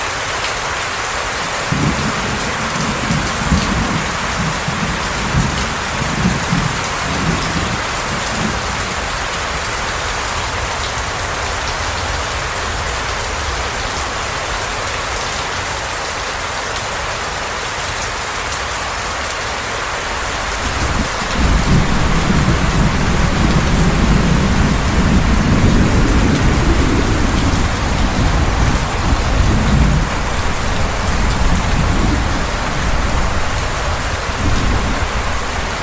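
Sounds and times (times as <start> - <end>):
heavy tropical storm rain pouring: 0.0 - 35.8
deep tropical storm thunder rumbling in rolling bursts: 1.6 - 9.0, 20.0 - 35.8.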